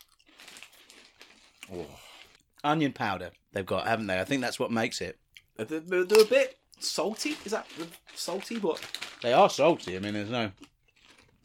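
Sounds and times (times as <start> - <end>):
crunching cheese-flavoured corn snack crisps: 0.0 - 2.4, 6.8 - 11.4
speech: 1.7 - 10.7.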